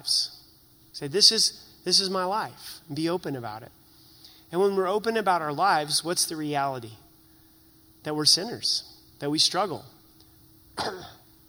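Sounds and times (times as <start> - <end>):
speech: 0.0 - 0.3, 1.0 - 3.8, 4.5 - 7.0, 8.0 - 10.0, 10.8 - 11.2
low hiss: 0.0 - 11.4
sharp cough: 10.8 - 11.3.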